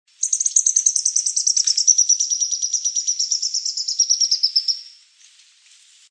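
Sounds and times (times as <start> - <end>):
Grey-headed spinetail Cranioleuca semicinerea semicinerea calling: 0.2 - 5.0.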